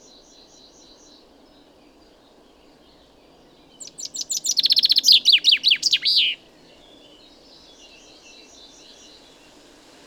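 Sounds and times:
common chaffinch Fringilla coelebs singing: 0:03.6 - 0:09.6.

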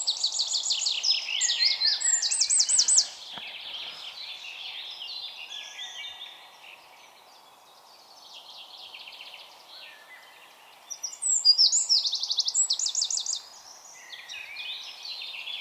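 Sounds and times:
Eurasian wren song Troglodytes troglodytes: 0:00.0 - 0:15.5.

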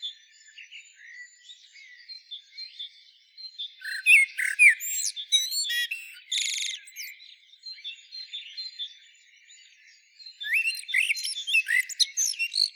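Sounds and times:
common blackbird chirping and twittering: 0:03.6 - 0:08.8, 0:10.2 - 0:12.7.

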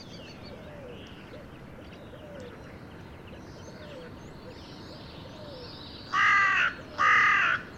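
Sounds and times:
carrion crow Corvus corone cawing: 0:06.1 - 0:07.7.

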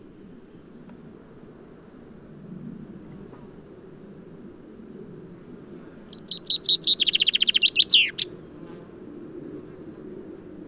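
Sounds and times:
Fringilla coelebs common chaffinch song: 0:06.0 - 0:08.6.

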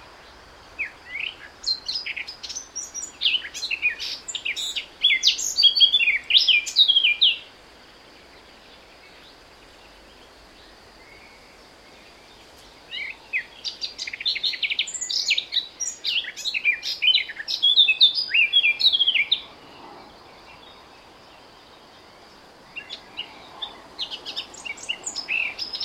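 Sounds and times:
Eurasian blackcap Sylvia atricapilla song: 0:00.0 - 0:07.5, 0:12.2 - 0:19.5, 0:22.7 - 0:25.8.

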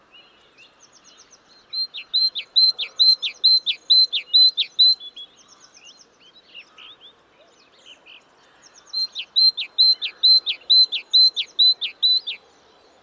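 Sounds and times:
great tit Parus major singing two-note phrases: 0:01.3 - 0:05.1, 0:08.6 - 0:12.4.

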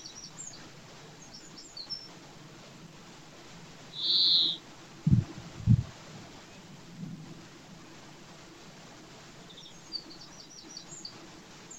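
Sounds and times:
European greenfinch Chloris chloris wheezing notes: 0:04.0 - 0:04.6
brief low thumps: 0:05.0 - 0:06.0.

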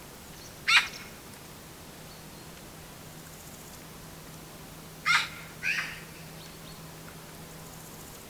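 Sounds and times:
Eurasian magpie Pica pica giving harsh scratchy calls: 0:00.7 - 0:01.1, 0:05.0 - 0:06.3.

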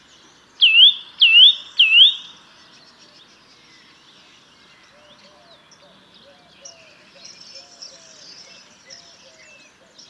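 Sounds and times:
Eurasian nuthatch Sitta europaea giving loud whistled calls: 0:00.6 - 0:02.3.

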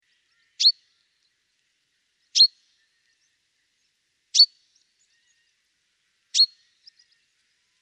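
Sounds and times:
Fringilla coelebs common chaffinch giving short sharp high calls: 0:00.6 - 0:00.8, 0:02.4 - 0:02.6, 0:04.4 - 0:04.6, 0:06.4 - 0:07.0.

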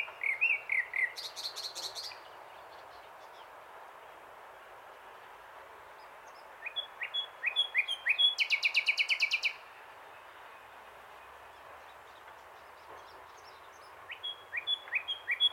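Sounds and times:
common nightingale Luscinia megarhynchos singing: 0:00.0 - 0:03.5, 0:06.0 - 0:09.7, 0:11.2 - 0:15.5.

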